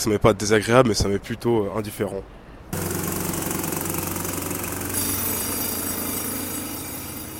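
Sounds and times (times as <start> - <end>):
speech: 0.0 - 2.9
jackhammer pounding: 2.8 - 7.3
low engine drone: 2.8 - 7.3.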